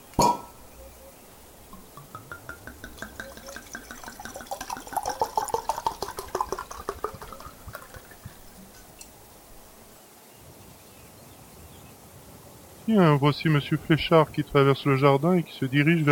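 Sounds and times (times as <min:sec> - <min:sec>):
very old brandy being poured: 0:01.5 - 0:09.9
speech: 0:12.9 - 0:16.1.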